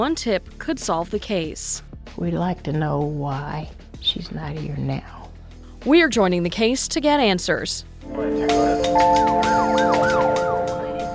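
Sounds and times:
speech: 0.0s - 5.2s, 5.8s - 10.0s
emergency vehicle sirens wailing in a Kansas City neighborhood: 8.3s - 11.1s.

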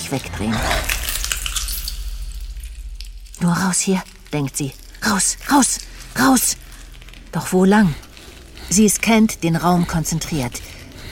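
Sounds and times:
speech: 0.1s - 1.0s, 3.4s - 6.6s, 7.3s - 8.0s, 8.7s - 10.8s
low rumble: 0.3s - 11.1s
meat sizzling on a spit over a fire: 0.6s - 9.0s.

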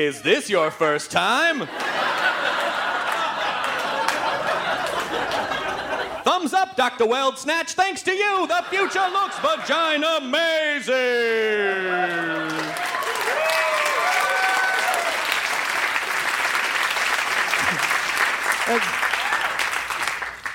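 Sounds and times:
speech: 0.0s - 2.2s, 6.6s - 12.9s, 18.7s - 18.9s
laughter: 1.4s - 6.5s, 8.2s - 13.0s, 17.5s - 19.0s
large audience applauding: 1.8s - 5.9s, 11.5s - 20.5s
whoops and cheering voices: 11.2s - 15.4s, 18.8s - 19.7s.

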